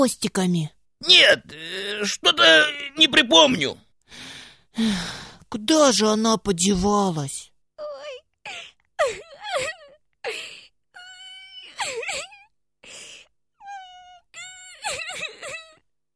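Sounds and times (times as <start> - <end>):
speech: 0.0 - 7.5
person crying and wailing: 1.0 - 3.6, 7.8 - 12.5, 13.7 - 16.1.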